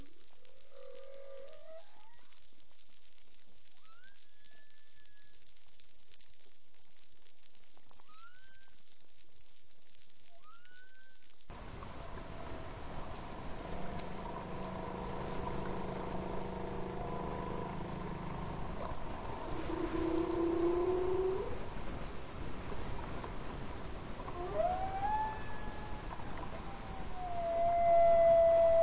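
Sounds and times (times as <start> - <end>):
whale song of long steady tonal moans with harmonics: 0.0 - 2.5, 3.7 - 5.5, 7.9 - 9.0, 10.2 - 28.8
whale short rising whoop: 0.6 - 2.3, 14.5 - 21.7, 24.2 - 28.8.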